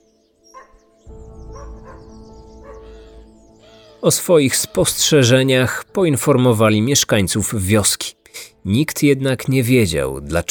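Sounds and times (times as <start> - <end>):
dog barking: 0.5 - 0.9, 1.5 - 3.1
speech: 4.0 - 10.4.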